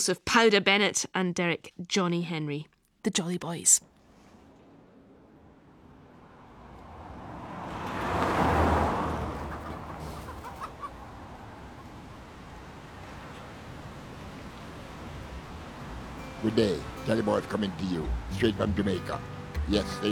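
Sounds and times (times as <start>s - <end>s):
speech: 0.0s - 3.9s, 16.4s - 20.0s
sea waves breaking on shore: 4.0s - 19.8s.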